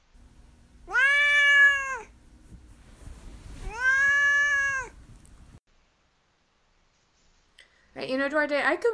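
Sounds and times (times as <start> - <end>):
cat meowing long drawn-out calls: 0.9 - 2.1, 3.6 - 5.0
speech: 8.1 - 8.9.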